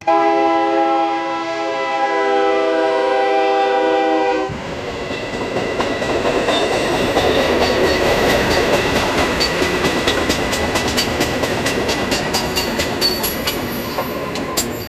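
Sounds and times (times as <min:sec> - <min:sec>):
train horn: 0:00.0 - 0:04.6
train approaching: 0:00.0 - 0:14.9.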